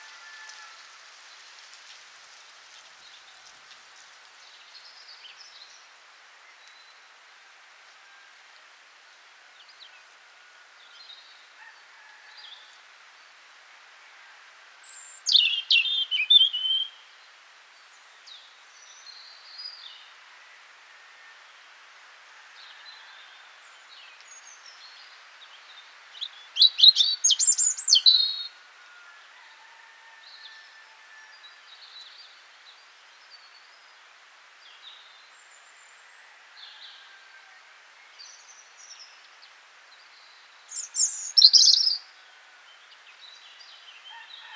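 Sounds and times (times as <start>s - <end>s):
European robin Erithacus rubecula singing: 14.9s - 17.0s, 26.2s - 28.6s, 40.2s - 42.1s.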